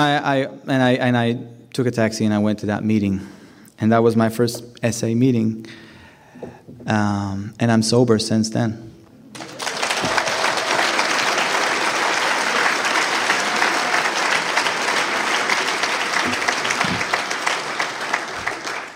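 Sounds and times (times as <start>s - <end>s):
speech: 0.0s - 5.8s, 6.4s - 9.5s
audience clapping in a room: 9.3s - 18.9s.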